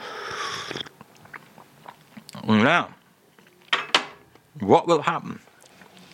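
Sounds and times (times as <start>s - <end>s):
slurping a drink through a strawberry cream-filled biscuit: 0.0s - 2.5s
speech: 2.5s - 3.0s, 4.6s - 5.5s.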